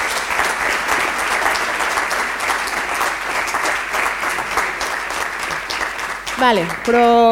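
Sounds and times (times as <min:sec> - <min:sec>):
sizable audience applauding: 0:00.0 - 0:07.3
speech: 0:06.4 - 0:07.3.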